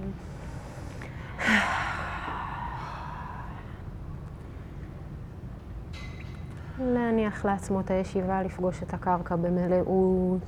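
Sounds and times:
faint hiss: 0.0 - 10.4
deep breath during a guided seated relaxation exercise, released through the mouth: 0.4 - 3.9
speech: 6.8 - 10.4.

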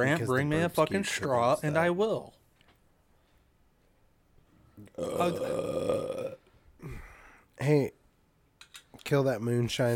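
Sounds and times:
speech: 0.0 - 2.4, 4.8 - 6.2, 7.6 - 8.0, 9.1 - 9.9
person burping: 4.8 - 6.9.

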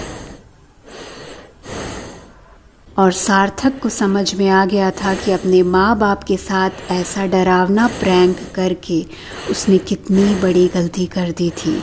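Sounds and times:
heavy breathing in a dark room: 0.0 - 11.8
speech: 3.0 - 11.8.

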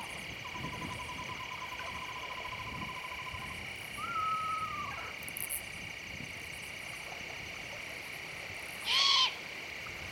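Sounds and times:
high-pitched drone of night insects: 0.0 - 10.1
owl call at night: 4.0 - 5.1, 8.8 - 9.4.

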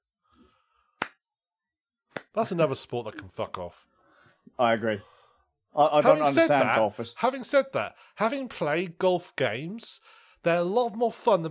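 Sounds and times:
slow polite golf clap: 2.1 - 2.4
speech: 2.4 - 3.9, 4.5 - 5.1, 5.7 - 11.4.

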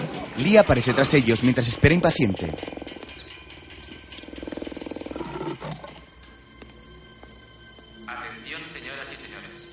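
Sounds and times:
speech: 0.4 - 2.9
tiger roaring and growling in a zoo enclosure: 0.9 - 3.3, 4.0 - 6.1.

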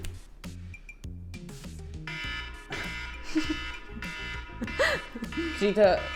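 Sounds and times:
game timer alarm with repeating electronic buzzes and tones: 2.0 - 6.1
speech: 3.3 - 3.8, 4.8 - 6.1.

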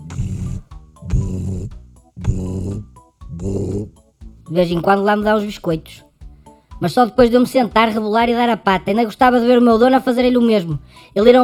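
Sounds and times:
voice imitating a rumbling upset stomach growling: 0.0 - 4.0
speech: 4.5 - 6.1, 6.8 - 11.4.

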